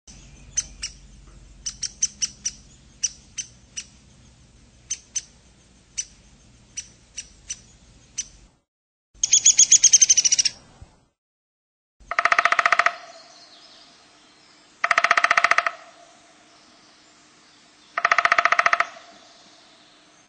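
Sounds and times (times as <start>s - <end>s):
Downy Woodpecker: 0.5s - 1.0s, 1.6s - 4.0s, 4.9s - 5.3s, 6.0s - 8.4s, 9.2s - 10.6s, 12.0s - 13.5s, 14.8s - 16.0s, 18.0s - 19.3s.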